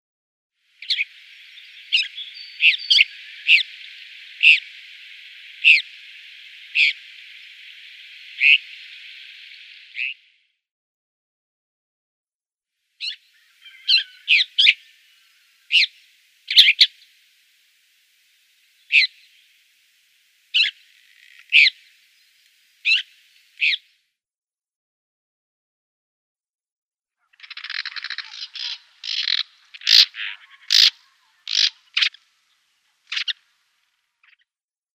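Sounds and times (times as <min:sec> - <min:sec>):
Woodchat Shrike calling: 0:00.8 - 0:10.3, 0:13.0 - 0:23.9, 0:27.2 - 0:33.6.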